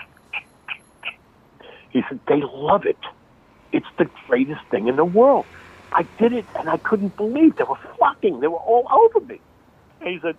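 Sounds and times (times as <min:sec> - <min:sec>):
squeaky mouth chirps made by squeezing an air pocket out of the mouth: 0:00.0 - 0:01.9
speech: 0:01.9 - 0:10.3.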